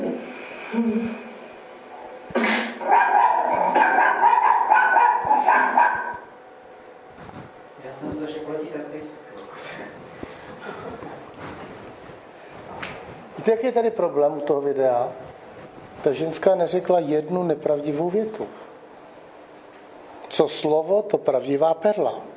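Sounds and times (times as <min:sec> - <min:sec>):
speech: 0:00.7 - 0:01.2, 0:13.5 - 0:15.2, 0:16.0 - 0:18.6, 0:20.4 - 0:22.3
dog barking and yelping excitedly: 0:02.8 - 0:06.3.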